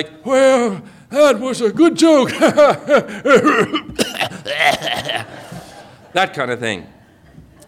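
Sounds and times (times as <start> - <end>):
speech: 0.0 - 5.3, 6.1 - 7.0
person laughing: 2.3 - 5.7
person coughing harshly: 3.2 - 5.4.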